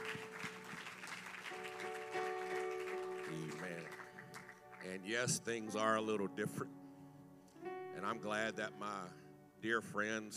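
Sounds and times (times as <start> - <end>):
crowd applause: 0.0 - 4.8
speech: 4.8 - 6.8, 8.0 - 10.3.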